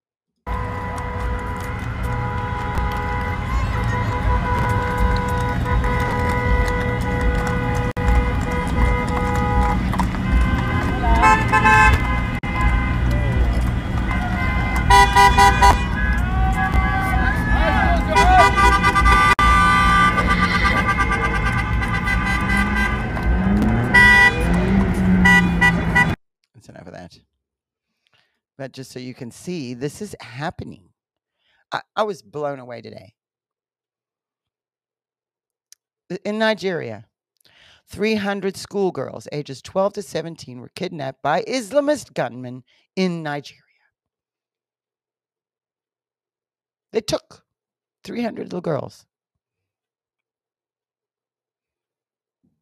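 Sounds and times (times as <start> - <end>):
crowd voices and shouting: 0.5 - 26.1
car horns blaring in blocked traffic: 0.5 - 26.2
traffic noise on a busy blocked street: 0.5 - 26.2
speech: 28.8 - 30.9, 31.7 - 33.2, 36.1 - 37.1, 37.9 - 43.6, 46.9 - 47.4, 48.0 - 49.1.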